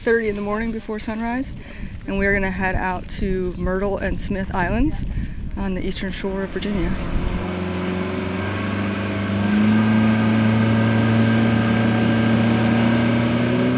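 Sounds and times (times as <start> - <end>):
speech: 0.0 - 7.4
motorboat engine droning: 5.8 - 13.7.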